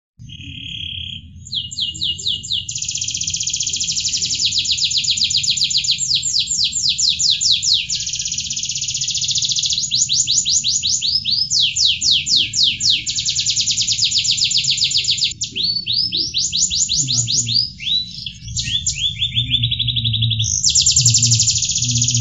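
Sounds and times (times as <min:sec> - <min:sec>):
standard canary singing in kapal oleng style: 0:00.2 - 0:22.1.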